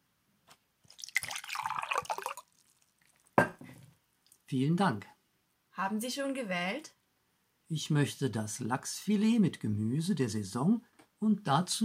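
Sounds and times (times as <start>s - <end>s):
mineral water pouring into a glass at a restaurant table: 0.9s - 3.4s
speech: 4.5s - 5.1s, 5.8s - 7.0s, 7.7s - 11.8s.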